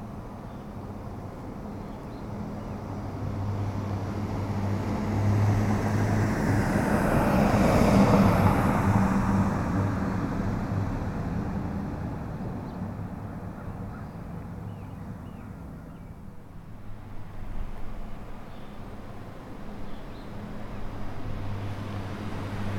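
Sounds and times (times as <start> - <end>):
single car passing by on a street: 3.1 - 13.5, 16.5 - 22.7.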